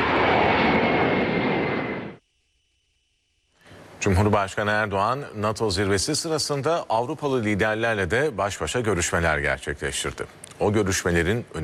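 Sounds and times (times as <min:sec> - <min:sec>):
presidential airplane engines roaring at departure from Esenboğa Airport: 0:00.0 - 0:02.2
speech: 0:04.0 - 0:11.6.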